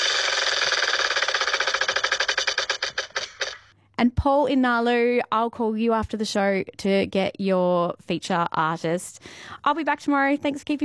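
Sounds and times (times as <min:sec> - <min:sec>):
prize wheel spinning and ticking: 0:00.0 - 0:03.7
speech: 0:04.0 - 0:10.8.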